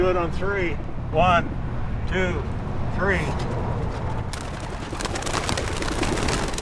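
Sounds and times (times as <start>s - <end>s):
speech: 0.0s - 3.7s
flock of homing pigeons wings flapping: 4.3s - 6.5s.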